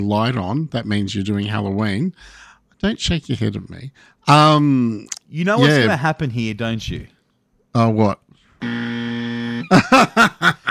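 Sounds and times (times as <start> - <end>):
speech: 0.0 - 8.8, 9.7 - 10.6
unwanted electrical buzzer interfering with a recording: 8.6 - 9.8
laughter: 9.6 - 10.6.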